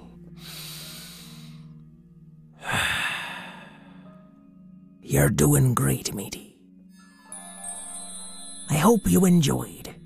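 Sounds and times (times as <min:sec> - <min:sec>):
deep breath during a guided meditation: 0:00.3 - 0:01.8, 0:02.6 - 0:04.3
speech: 0:05.1 - 0:06.4, 0:08.8 - 0:09.8.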